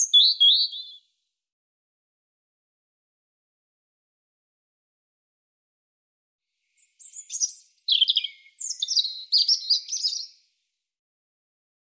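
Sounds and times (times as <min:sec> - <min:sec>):
European robin singing: 0:00.0 - 0:01.0, 0:06.8 - 0:10.4.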